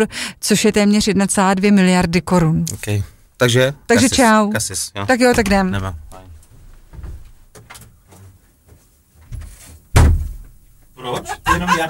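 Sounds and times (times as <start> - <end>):
speech: 0.0 - 6.0
softer thuds and handling noises of a moving door: 5.2 - 8.0, 9.3 - 10.6
door slamming shut: 9.9 - 10.6
laughter: 11.0 - 11.8.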